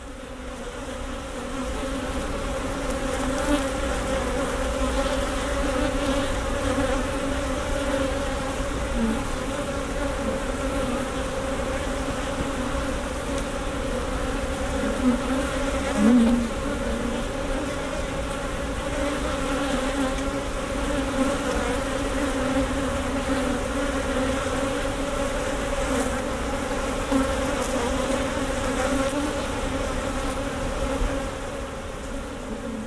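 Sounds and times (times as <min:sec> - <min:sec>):
bees swarming around hives at an apiary on a meadow: 0:00.0 - 0:32.8.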